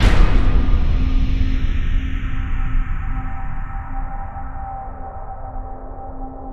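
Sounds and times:
echoing slam sting: 0.0 - 4.8.

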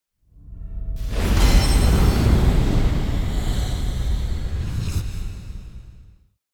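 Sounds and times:
heavy door opening impact in slow motion: 1.0 - 5.8.

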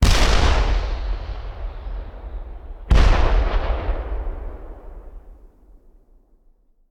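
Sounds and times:
artillery rocket launcher: 0.0 - 5.4.

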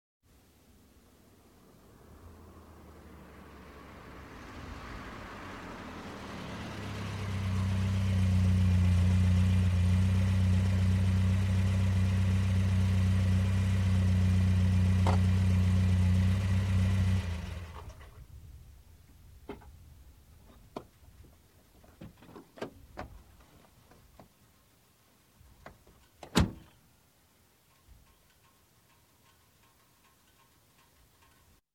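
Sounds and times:
Golf GTI approaching: 0.8 - 19.8.

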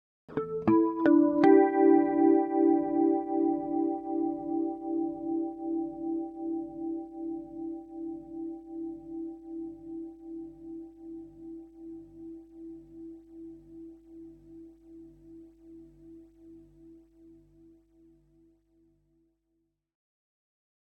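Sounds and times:
electric guitar harmonic arpeggio with flange: 0.3 - 9.2.

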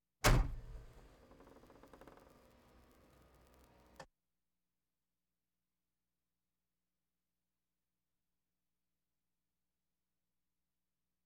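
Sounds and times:
various automobiles: 0.3 - 4.1.

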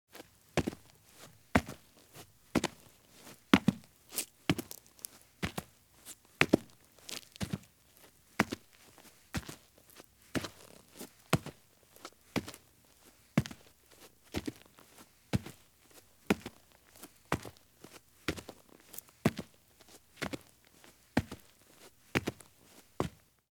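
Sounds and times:
heavy boots walking at medium pace on dirt: 0.1 - 12.6, 13.4 - 13.7, 16.3 - 23.2.

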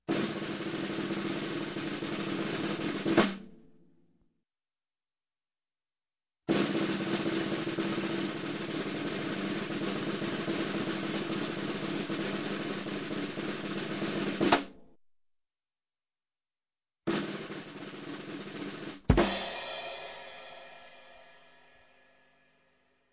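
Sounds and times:
drum roll: 0.1 - 3.5, 6.5 - 14.8, 17.1 - 21.9
music: 0.1 - 4.3, 6.5 - 15.0, 17.1 - 23.1.

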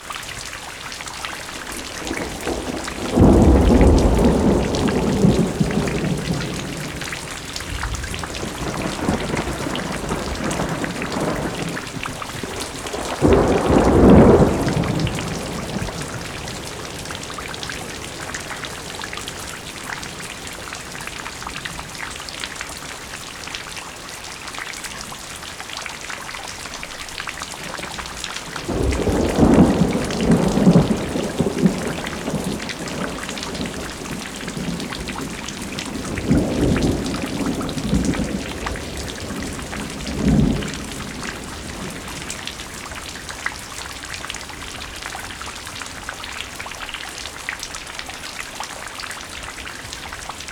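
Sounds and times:
rain: 0.0 - 50.5
thunder: 1.5 - 22.2, 27.6 - 43.6.

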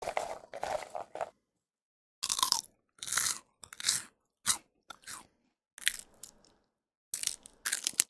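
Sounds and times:
person eating flips: 0.0 - 1.3, 2.2 - 5.2, 5.8 - 6.6, 7.2 - 8.0.

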